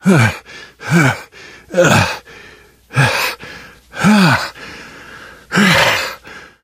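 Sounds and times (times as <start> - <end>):
minor exertion grunt: 0.0 - 2.2, 2.9 - 3.4, 4.0 - 4.6, 5.5 - 6.2.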